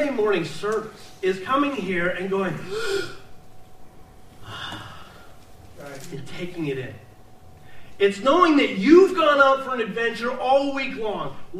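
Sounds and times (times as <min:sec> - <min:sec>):
speech: 0:00.1 - 0:03.2, 0:05.8 - 0:07.0, 0:08.0 - 0:11.5
deep gasping breath by a preacher during a church service: 0:04.4 - 0:05.4.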